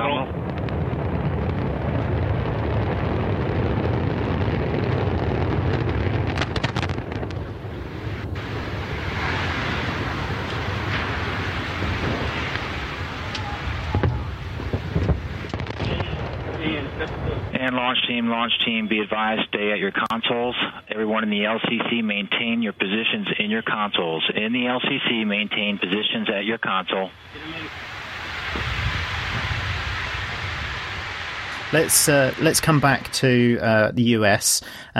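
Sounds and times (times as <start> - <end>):
wind buffeting: 0.0 - 17.6, 27.1 - 34.0
Antares rocket engines roaring at liftoff at 108 percent: 0.0 - 34.9
speech: 18.2 - 27.9, 31.7 - 34.9.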